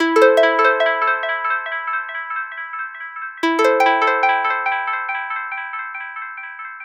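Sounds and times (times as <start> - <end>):
dubstep harp loop in E at 140 BPM: 0.0 - 2.0, 3.4 - 5.2.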